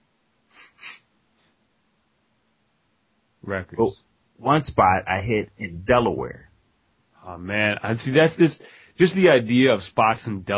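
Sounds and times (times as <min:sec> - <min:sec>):
faint hiss: 0:00.0 - 0:10.5
quick nasal sniffs: 0:00.5 - 0:01.1
speech: 0:03.4 - 0:06.5, 0:07.2 - 0:10.5.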